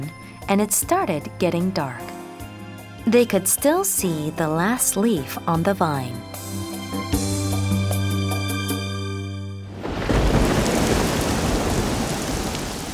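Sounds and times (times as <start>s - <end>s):
speech: 0.0s - 2.2s, 3.0s - 6.7s
sustained musical tones: 0.0s - 9.7s
low rumble of thunder: 9.7s - 12.9s
heavy rain hissing in a thunderstorm: 9.8s - 12.9s.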